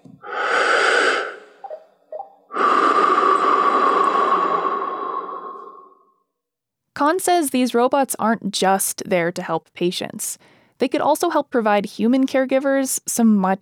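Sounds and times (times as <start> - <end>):
slow deep breathing by an instructor leading a seated yoga exercise: 0.2 - 1.8, 2.5 - 6.2
speech: 7.1 - 13.6.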